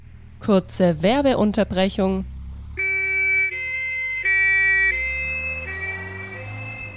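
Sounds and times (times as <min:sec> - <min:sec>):
low rumble of traffic: 0:00.0 - 0:06.9
speech: 0:00.5 - 0:02.3
two-tone ambulance siren wailing: 0:02.8 - 0:06.9.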